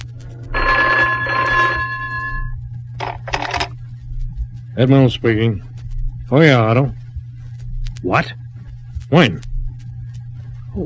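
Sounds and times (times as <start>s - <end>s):
steady low hum: 0.0s - 10.8s
telephone bell ringing: 0.6s - 2.5s
speech: 4.8s - 5.7s, 6.3s - 7.0s, 8.0s - 8.4s, 9.1s - 9.5s.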